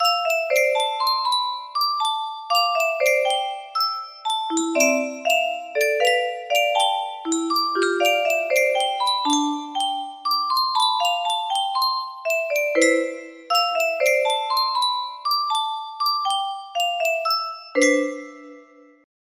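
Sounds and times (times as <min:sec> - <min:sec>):
music box intro: 0:00.0 - 0:19.1.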